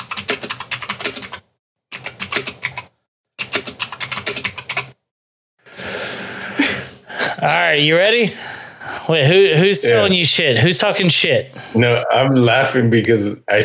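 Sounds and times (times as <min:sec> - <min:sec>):
typing on a computer keyboard: 0:00.0 - 0:05.0
speech: 0:07.4 - 0:08.5, 0:09.1 - 0:13.6.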